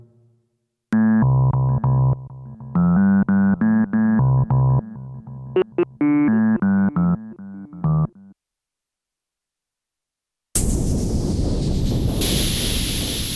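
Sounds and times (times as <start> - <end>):
solo synthesizer notes: 0.9 - 8.3
harsh noisy hiss with falling whistle-like tone: 10.6 - 13.3.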